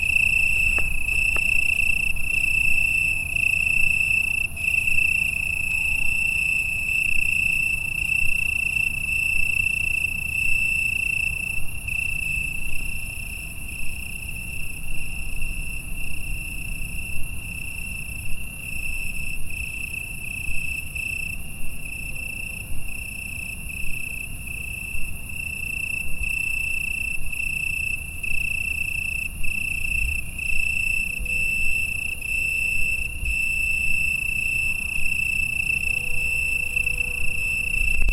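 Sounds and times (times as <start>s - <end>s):
crickets chirping in Italy at 9 pm: 0.0s - 38.1s.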